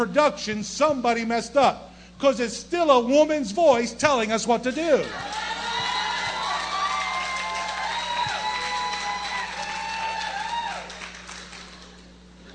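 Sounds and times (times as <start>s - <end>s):
speech: 0.0s - 5.5s
large crowd applauding: 4.7s - 12.2s.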